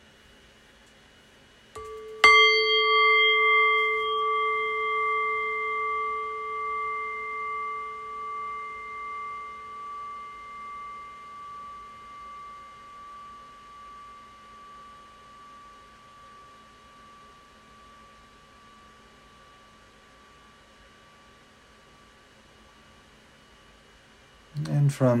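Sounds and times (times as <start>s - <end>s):
single meditation bell struck and ringing: 1.8s - 21.2s
speech: 24.9s - 25.1s.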